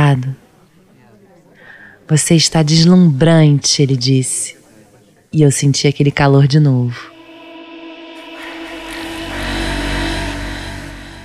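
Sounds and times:
speech: 0.1s - 0.4s, 2.1s - 4.6s, 5.3s - 7.1s
taxi car engine revving and driving off: 7.1s - 11.2s.

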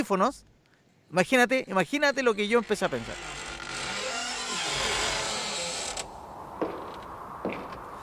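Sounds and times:
speech: 0.0s - 0.5s, 1.1s - 3.4s
door creaking open: 2.0s - 6.1s.

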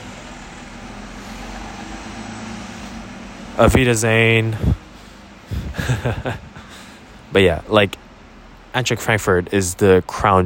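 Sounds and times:
bus passing by: 0.0s - 7.3s
speech: 3.6s - 4.8s, 5.8s - 6.5s, 7.3s - 8.0s, 8.7s - 10.4s
laughter: 5.5s - 6.9s.

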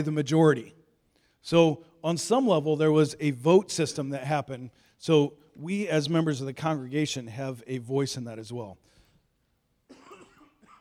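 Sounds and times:
speech: 0.0s - 0.8s, 1.4s - 8.9s
harsh raspy cough: 9.9s - 10.8s.

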